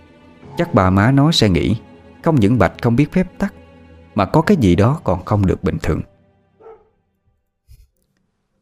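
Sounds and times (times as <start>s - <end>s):
speech: 0.6s - 3.6s, 4.2s - 6.1s
dog barks: 6.6s - 7.0s.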